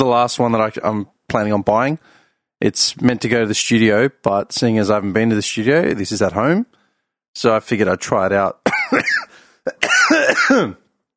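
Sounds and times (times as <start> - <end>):
speech: 0.0 - 6.8, 7.4 - 10.8
person at home coughing into a microphone: 8.7 - 10.9.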